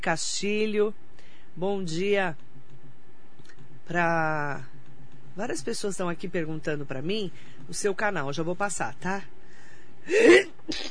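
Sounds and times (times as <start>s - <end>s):
speech: 0.0s - 1.0s, 1.6s - 2.4s, 3.9s - 4.7s, 5.4s - 9.4s, 10.0s - 10.9s
woman with rhinitis sneezing: 10.1s - 10.9s.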